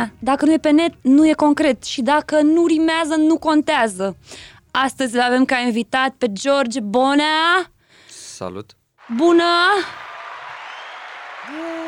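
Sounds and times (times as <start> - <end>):
speech: 0.0 - 7.7, 8.4 - 10.0, 11.5 - 11.8
audience applause for a guest: 9.0 - 11.8.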